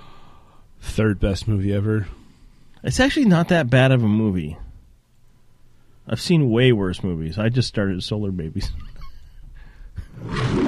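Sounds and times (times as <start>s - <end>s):
speech: 1.0s - 2.2s, 2.8s - 4.6s, 6.1s - 8.9s, 10.2s - 10.6s
lion roar from a film studio logo: 10.1s - 10.6s.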